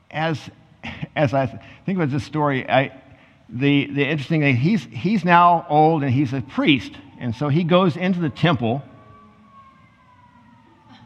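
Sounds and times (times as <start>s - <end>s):
low rumble of traffic: 0.0s - 11.0s
speech: 0.1s - 0.6s, 1.2s - 8.9s
ambulance siren wailing outside as it passes: 4.9s - 11.0s.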